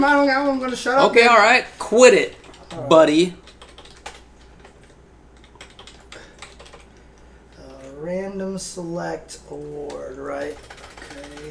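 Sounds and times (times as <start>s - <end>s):
speech: 0.0s - 3.4s, 8.0s - 10.8s
clicky typing on a computer keyboard: 2.2s - 8.0s, 9.4s - 11.4s.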